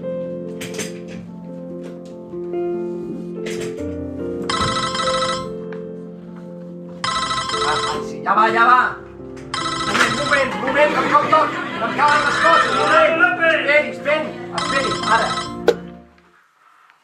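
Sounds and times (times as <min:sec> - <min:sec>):
telephone bell ringing for an incoming call: 0:04.5 - 0:05.6, 0:07.0 - 0:08.1, 0:09.5 - 0:10.6, 0:12.1 - 0:12.9, 0:14.6 - 0:15.6
speech: 0:08.3 - 0:09.0, 0:10.8 - 0:15.4
laughter: 0:10.1 - 0:13.4.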